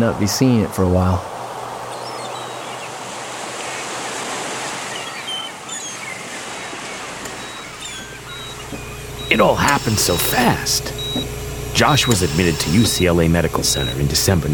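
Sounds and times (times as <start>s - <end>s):
speech: 0.0s - 1.4s, 9.3s - 14.5s
ocean surf breaking on shore: 0.8s - 11.2s
faint high bird chirps: 1.9s - 3.9s, 4.8s - 14.0s.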